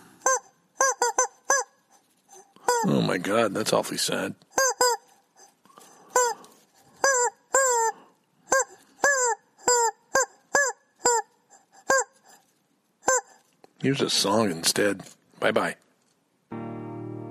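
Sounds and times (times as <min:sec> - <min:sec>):
chicken squawking: 0:00.0 - 0:03.2, 0:04.6 - 0:12.4, 0:13.0 - 0:13.4
speech: 0:02.8 - 0:04.5, 0:13.8 - 0:15.8.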